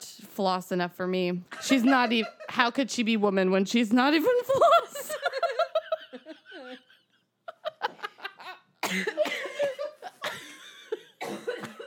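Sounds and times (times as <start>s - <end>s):
speech: 0.4s - 4.8s, 8.9s - 9.2s
giggly laughter: 4.5s - 11.8s
harsh loud coughs: 8.8s - 10.4s, 11.2s - 11.8s.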